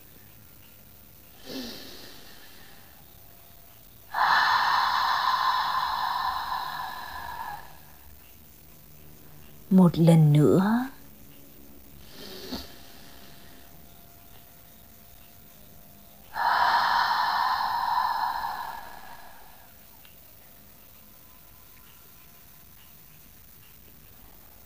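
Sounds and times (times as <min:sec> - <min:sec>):
deep inhale through the nose and exhale through the mouth: 0:01.3 - 0:03.2, 0:04.0 - 0:08.2, 0:12.0 - 0:14.0, 0:16.2 - 0:20.0
speech: 0:09.7 - 0:10.8.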